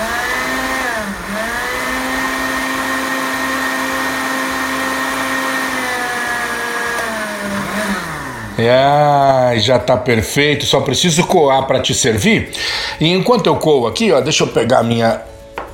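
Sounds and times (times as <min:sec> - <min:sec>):
blender blending dates with liquid: 0:00.0 - 0:09.5
speech: 0:08.6 - 0:15.3.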